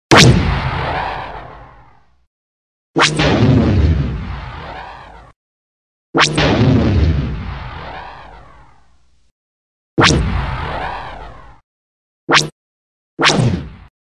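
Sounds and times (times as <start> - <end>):
blaster shot: 0.1 - 2.3, 3.0 - 5.4, 6.2 - 9.3, 10.0 - 11.6, 12.3 - 12.6, 13.2 - 13.9.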